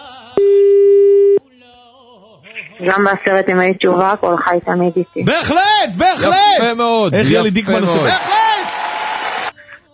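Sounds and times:
telephone busy signal as a call is placed: 0.4s - 1.4s
speech: 2.8s - 8.4s.

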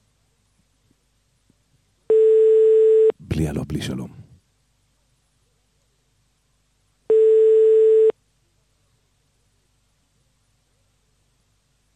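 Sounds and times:
telephone line tone: 2.1s - 3.1s, 7.1s - 8.1s
speech: 3.4s - 4.3s.

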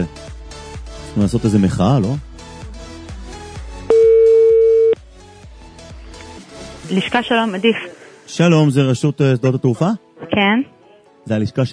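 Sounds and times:
speech: 1.2s - 2.3s, 6.9s - 11.7s
telephone dialing tone: 3.9s - 5.0s.

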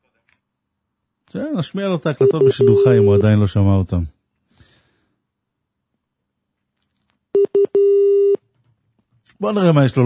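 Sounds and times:
speech: 1.3s - 4.2s, 9.4s - 10.0s
telephone busy signal: 2.2s - 3.3s, 7.4s - 8.4s.

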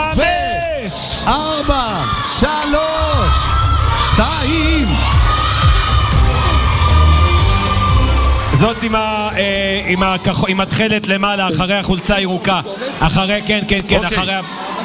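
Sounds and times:
speech: 0.9s - 5.4s, 8.6s - 14.7s
group of girls shouting and screaming as loudly as possible: 3.0s - 8.6s.

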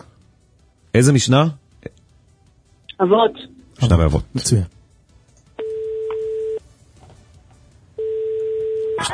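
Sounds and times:
speech: 1.0s - 2.0s, 3.0s - 4.8s
telephone ringing tones while a call is placed: 5.6s - 6.6s, 8.0s - 9.0s.

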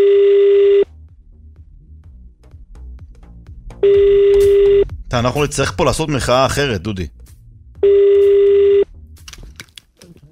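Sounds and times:
unanswered telephone call ringing tone: 0.0s - 0.9s, 3.8s - 4.8s, 7.8s - 8.9s
speech: 5.1s - 7.2s.

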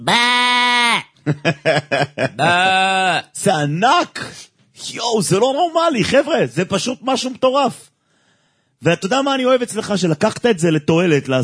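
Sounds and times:
speech: 0.0s - 0.3s, 1.3s - 7.9s, 8.8s - 11.4s
human voice imitating sheep bleating: 0.0s - 1.2s, 2.4s - 3.4s
laughter: 1.2s - 2.8s.

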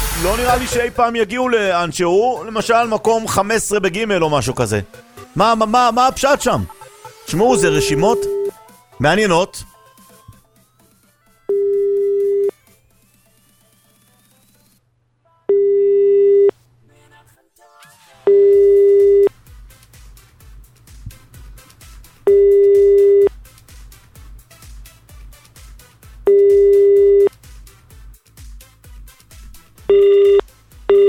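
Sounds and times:
speech: 0.2s - 8.4s, 9.0s - 9.7s
telephone busy signal after dialing: 7.3s - 8.6s, 11.5s - 12.5s, 15.5s - 16.5s, 18.3s - 19.3s, 22.3s - 23.3s, 26.3s - 27.3s, 29.9s - 31.0s.

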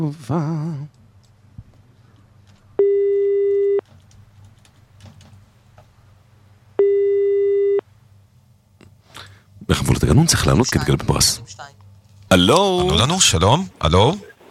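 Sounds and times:
speech: 0.0s - 1.0s, 9.7s - 14.3s
low hum: 0.0s - 14.4s
telephone line signal tones while placing a call: 2.8s - 3.8s, 6.8s - 7.8s.

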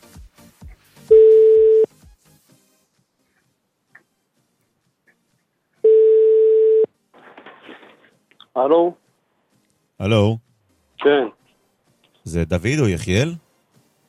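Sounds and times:
telephone line tones of a call dialled on air: 1.1s - 1.9s, 5.8s - 6.9s
speech: 8.6s - 9.0s, 10.0s - 10.4s, 11.0s - 11.4s, 12.2s - 13.4s.

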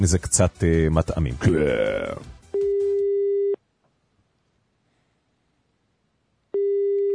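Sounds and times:
speech: 0.0s - 2.4s
telephone busy signal on a call being placed: 2.6s - 3.6s, 6.6s - 7.1s.

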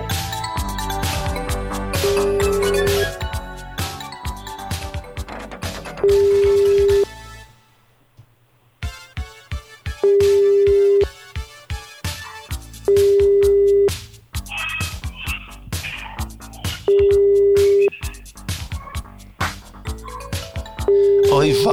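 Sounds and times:
rhythmic music with beats: 0.0s - 7.6s, 8.8s - 21.7s
ringing tones from an outgoing phone call: 2.0s - 3.2s, 6.0s - 7.1s, 8.8s - 12.2s, 12.8s - 14.1s, 16.9s - 18.0s, 20.8s - 21.7s.

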